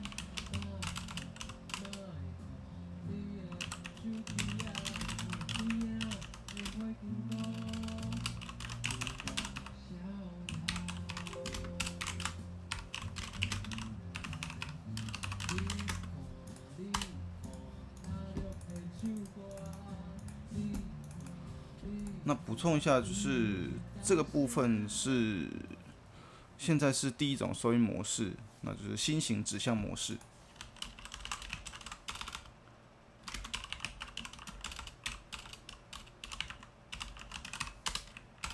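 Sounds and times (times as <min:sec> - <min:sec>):
typing on a computer keyboard: 0:00.0 - 0:02.1, 0:03.5 - 0:09.7, 0:10.5 - 0:16.1, 0:16.9 - 0:20.3, 0:30.6 - 0:32.5, 0:33.2 - 0:38.5
steady low hum or music: 0:00.0 - 0:38.5
speech: 0:22.3 - 0:25.8, 0:26.6 - 0:30.3.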